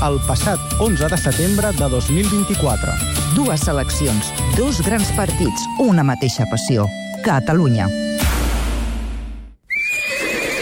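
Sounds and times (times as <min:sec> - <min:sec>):
speech: 0:00.0 - 0:08.1
horse neighing: 0:09.7 - 0:10.6.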